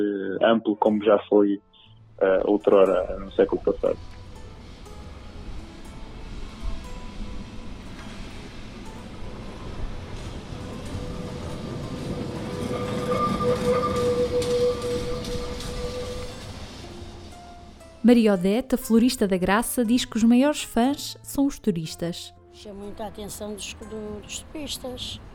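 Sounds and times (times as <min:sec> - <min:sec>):
speech: 0:00.0 - 0:04.2, 0:18.1 - 0:25.3
electric tram rumbling along its rails: 0:02.2 - 0:21.3, 0:22.7 - 0:25.3
thin metallic tram wheel squeals: 0:09.7 - 0:17.9.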